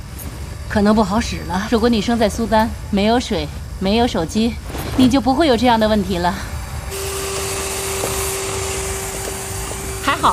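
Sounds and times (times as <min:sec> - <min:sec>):
speech: 0:00.7 - 0:06.5
vacuum cleaner running: 0:06.5 - 0:10.3.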